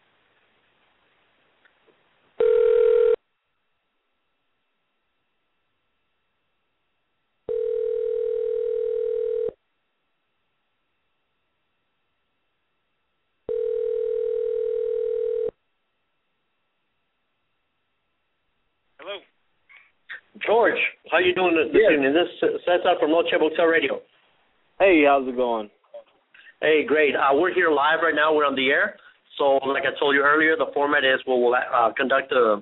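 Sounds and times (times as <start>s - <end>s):
ringback tone of an outgoing telephone call ringing out: 2.4s - 3.2s, 7.5s - 9.6s, 13.5s - 15.5s
speech: 20.5s - 24.2s, 24.8s - 25.8s, 26.6s - 32.5s.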